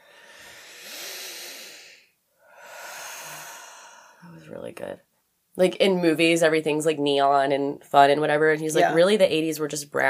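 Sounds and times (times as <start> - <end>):
deep breath: 0.0 - 4.5
speech: 4.4 - 10.0.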